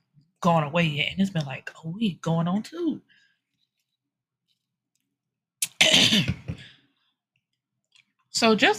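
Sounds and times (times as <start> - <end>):
speech: 0.4 - 3.2, 6.1 - 6.4, 8.4 - 8.7
short throat clearing: 5.6 - 6.6
raspy phlegmy cough: 5.7 - 6.6.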